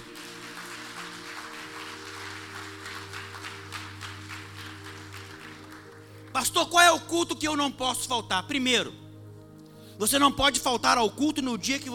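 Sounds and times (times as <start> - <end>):
audience applauding: 0.0 - 6.3
sustained low keyboard chords: 0.0 - 11.9
speech: 6.4 - 9.0, 10.0 - 11.9.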